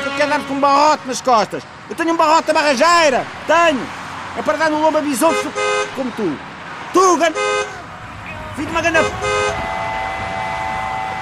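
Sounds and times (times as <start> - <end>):
car horn blast: 0.0 - 0.8, 5.3 - 6.0, 7.3 - 11.2
traffic-like noise: 0.0 - 11.2
speech: 0.3 - 7.8, 8.6 - 9.8.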